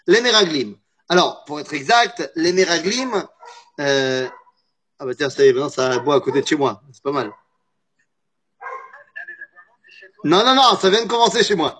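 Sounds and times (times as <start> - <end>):
speech: 0.0 - 4.4, 5.0 - 7.4, 10.2 - 11.7
dog barking next door: 2.7 - 4.5, 5.8 - 7.4, 8.6 - 9.0.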